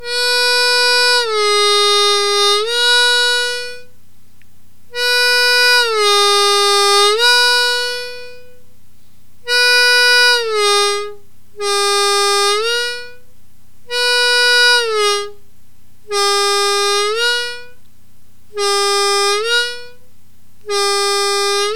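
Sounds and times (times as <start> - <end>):
harmonica note bending: 0.0 - 3.9, 4.9 - 8.6, 9.4 - 13.2, 13.9 - 15.4, 16.1 - 17.8, 18.5 - 20.0, 20.6 - 21.7.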